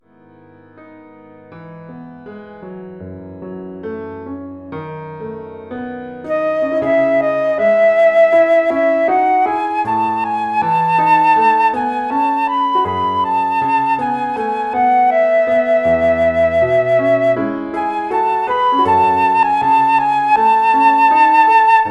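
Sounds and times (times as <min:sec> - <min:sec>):
flute solo over a PA system: 0:06.2 - 0:21.8.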